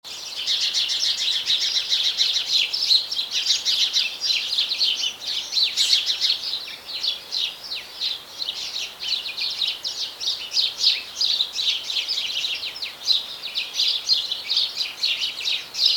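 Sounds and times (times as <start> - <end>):
house sparrows Passer domesticus chirping in dense chorus: 0.1 - 15.9.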